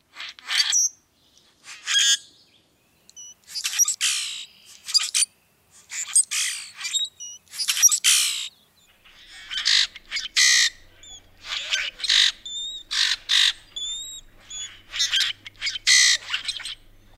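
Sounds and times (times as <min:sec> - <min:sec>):
common grackle calling: 0:03.1 - 0:17.1.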